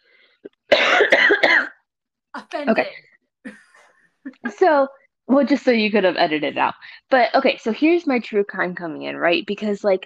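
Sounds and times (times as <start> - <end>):
loud harsh cough: 0.7 - 1.8, 2.4 - 4.5
speech: 2.4 - 3.6, 4.6 - 10.0.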